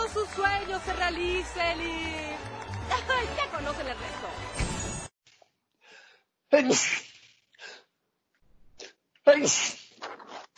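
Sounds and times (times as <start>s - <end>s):
speech: 0.1s - 4.8s, 6.5s - 7.1s, 9.4s - 9.8s
loud sneezes: 6.6s - 7.2s, 9.4s - 10.0s.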